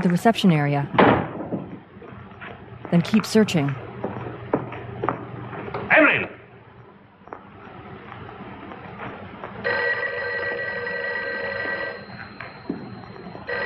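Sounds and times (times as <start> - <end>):
speech: 0.0 - 1.2, 2.9 - 3.8
busy office room noise: 0.0 - 13.6
private office telephone ringing: 9.6 - 13.6.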